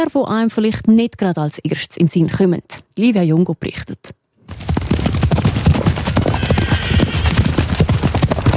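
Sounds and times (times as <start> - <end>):
speech: 0.0 - 4.7
several horses galloping over a pasture: 4.5 - 8.5
faint horse whinny: 6.2 - 7.7.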